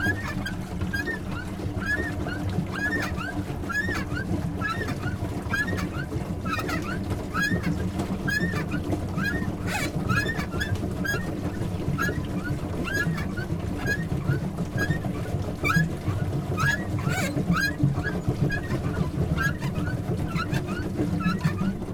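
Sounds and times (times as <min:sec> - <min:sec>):
duck boat engine: 0:00.0 - 0:21.9.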